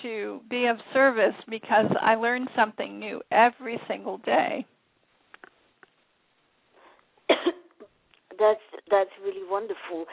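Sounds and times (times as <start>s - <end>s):
speech: 0.0s - 4.8s, 8.4s - 10.1s
sharp tickling cough: 7.3s - 7.9s.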